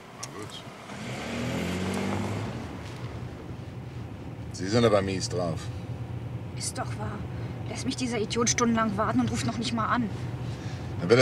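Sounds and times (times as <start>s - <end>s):
car engine accelerating and revving: 0.0s - 11.2s
speech: 4.6s - 5.8s, 6.6s - 11.2s.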